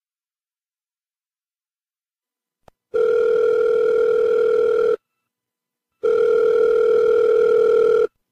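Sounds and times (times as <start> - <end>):
ringback tone on a phone line during an outgoing call: 3.0 - 5.0, 6.0 - 8.1.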